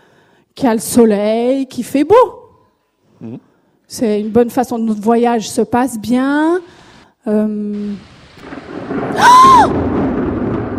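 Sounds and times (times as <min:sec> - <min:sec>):
speech: 0:00.6 - 0:02.4, 0:03.2 - 0:10.0
hiss of rain in a thunderstorm: 0:07.7 - 0:10.5
thunder rumbling in a thunderstorm: 0:07.8 - 0:10.7.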